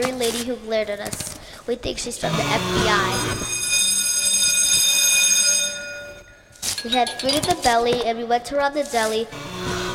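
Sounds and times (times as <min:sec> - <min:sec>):
speech: 0:00.0 - 0:03.7, 0:06.8 - 0:09.8
elevator electric alarm bell ringing with a harsh metallic buzz: 0:02.3 - 0:07.7.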